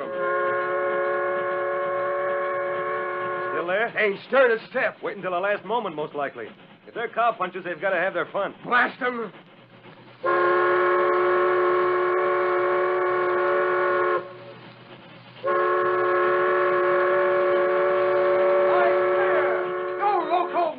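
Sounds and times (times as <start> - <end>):
supply train whistle blasts: 0.0 - 3.6, 10.2 - 14.6, 15.4 - 20.6
speech: 3.7 - 9.4.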